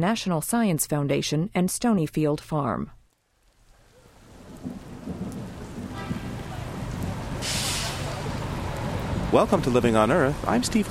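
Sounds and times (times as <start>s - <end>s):
speech: 0.0s - 3.0s, 9.3s - 10.8s
steady rain falling: 3.1s - 10.8s
low rolling rumble of thunder: 4.1s - 10.8s.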